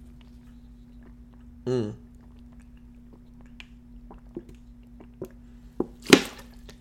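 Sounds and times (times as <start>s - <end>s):
person sipping water: 0.0s - 5.9s
mouth clicks: 0.2s - 5.4s.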